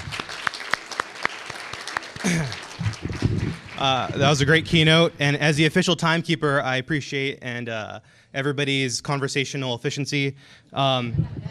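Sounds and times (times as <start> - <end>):
scattered applause from a small audience: 0.0 - 4.9
speech: 2.2 - 11.5.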